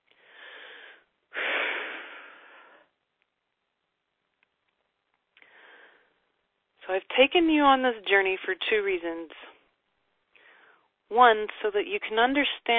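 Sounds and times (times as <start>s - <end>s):
big deep breath: 0.1s - 2.9s, 5.4s - 6.2s, 10.3s - 10.9s
speech: 6.9s - 9.5s, 11.1s - 12.7s.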